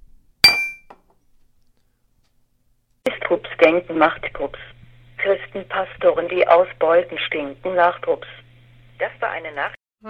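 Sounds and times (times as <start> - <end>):
glasses clinking in a toast: 0.4 - 0.9
speech: 3.3 - 8.4, 9.0 - 10.0.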